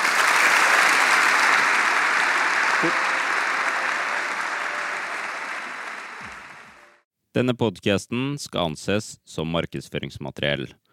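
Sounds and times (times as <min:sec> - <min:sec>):
large audience applauding: 0:00.0 - 0:07.0
speech: 0:02.8 - 0:03.0, 0:07.4 - 0:10.8.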